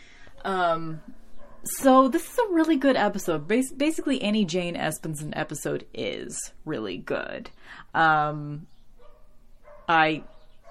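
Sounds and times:
speech: 0.4 - 8.7, 9.9 - 10.3
dog barking in the neighborhood: 1.3 - 1.7, 9.0 - 10.6.

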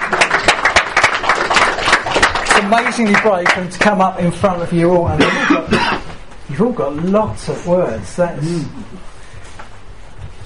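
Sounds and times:
crowd applause: 0.0 - 4.0
speech: 2.6 - 9.1.

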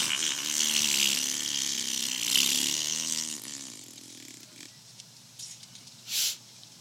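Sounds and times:
loud long rasping fart with a buzzy sputtering tone: 0.0 - 4.7.

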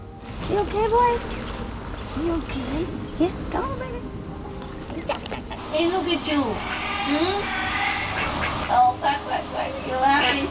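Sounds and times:
speech: 0.6 - 1.4, 2.2 - 4.2, 5.0 - 7.8, 8.7 - 10.4
duck quacking: 5.1 - 5.7, 6.4 - 8.9, 9.8 - 10.4.

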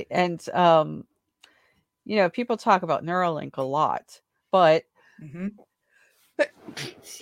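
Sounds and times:
speech: 0.0 - 1.1, 2.1 - 5.7, 6.4 - 7.1
sneeze: 6.6 - 7.1.

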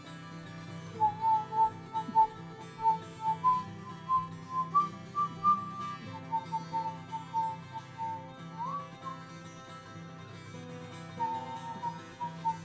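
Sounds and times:
person whistling a simple tune: 1.0 - 9.3, 11.2 - 12.6.

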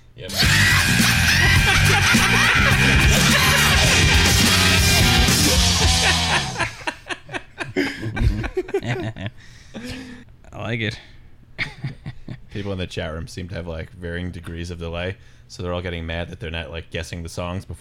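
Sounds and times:
several loud layered yells: 0.3 - 6.6
laughter: 0.3 - 10.2
speech: 10.7 - 11.1, 12.6 - 17.7.

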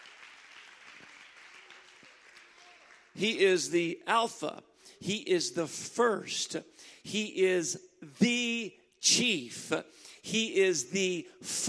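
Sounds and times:
crowd clapping: 0.0 - 3.4
speech: 3.2 - 11.6.

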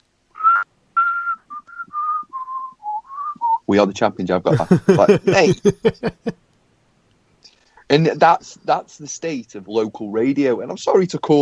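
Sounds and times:
man whistling a song's tune: 0.4 - 3.7
speech: 3.7 - 6.4, 7.9 - 11.4
laughter: 4.5 - 6.3.

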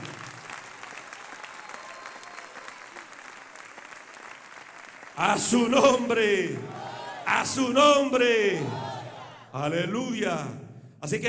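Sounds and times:
audience applauding: 0.0 - 7.4
speech: 5.2 - 8.8, 9.5 - 11.2.

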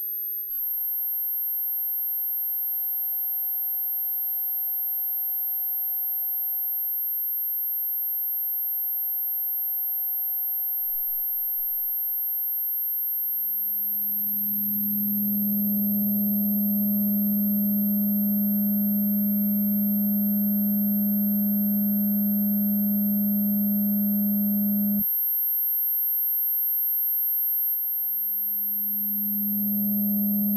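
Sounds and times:
low buzzing hum: 14.4 - 25.0, 28.8 - 30.5
soft electronic drone: 14.9 - 25.0.

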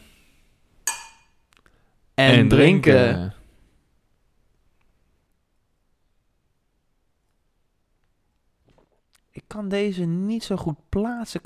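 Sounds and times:
beer glasses clinking in a toast: 0.9 - 1.4
speech: 2.2 - 3.4, 9.5 - 11.4.

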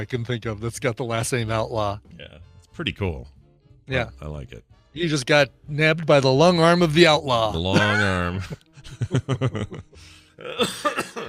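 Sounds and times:
speech: 0.0 - 11.2
laughter: 7.5 - 10.0
loud fit of hacking coughing: 10.4 - 11.2.

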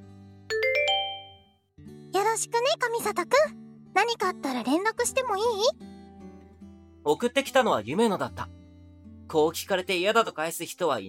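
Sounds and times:
smartphone message notification chime of four ascending notes: 0.5 - 1.4
speech: 2.2 - 5.9, 7.0 - 8.6, 9.3 - 11.0.

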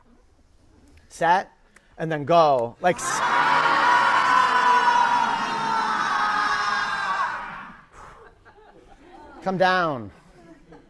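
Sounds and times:
speech: 1.1 - 3.4, 9.4 - 10.2
group of people yelling together: 2.9 - 7.9.

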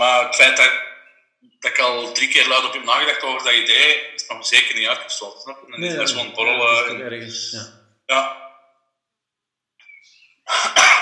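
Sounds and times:
speech: 0.0 - 8.4, 10.5 - 11.0
sneeze: 10.5 - 11.0.

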